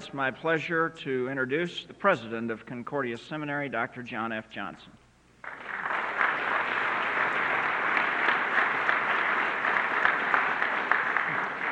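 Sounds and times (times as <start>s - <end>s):
speech: 0.0s - 5.6s
audience applause at a seminary campus gathering: 5.4s - 11.7s.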